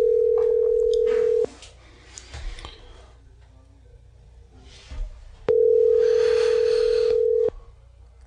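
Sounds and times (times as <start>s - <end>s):
outgoing phone call ringback tone: 0.0s - 1.5s, 5.5s - 7.5s.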